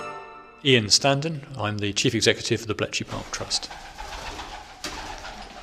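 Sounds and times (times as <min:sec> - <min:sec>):
speech: 0:00.6 - 0:04.0
pigeon wings fluttering as it flies overhead: 0:03.4 - 0:05.6.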